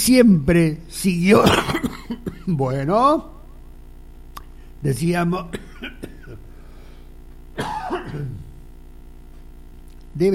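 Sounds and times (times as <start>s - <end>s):
speech: 0.0s - 3.4s, 4.8s - 6.0s, 10.2s - 10.3s
person coughing: 1.3s - 2.6s, 5.5s - 6.6s, 7.6s - 8.6s
person clearing throat: 1.4s - 2.6s, 7.6s - 8.6s.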